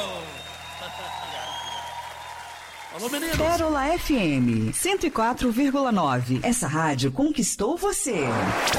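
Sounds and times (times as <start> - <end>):
audience applause: 0.0 - 6.1
speech: 2.9 - 8.7.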